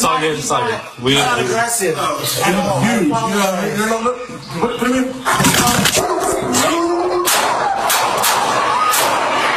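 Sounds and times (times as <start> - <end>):
speech: 0.2 - 6.8
police officer's gunshots recorded on a body camera: 7.2 - 9.4.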